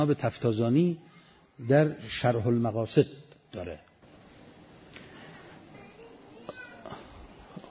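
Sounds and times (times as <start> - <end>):
speech: 0.0 - 3.9
distressed young child crying: 5.8 - 7.1.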